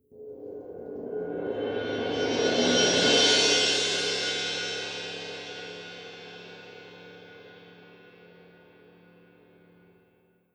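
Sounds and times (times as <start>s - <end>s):
soft cymbal roll: 1.2s - 10.1s.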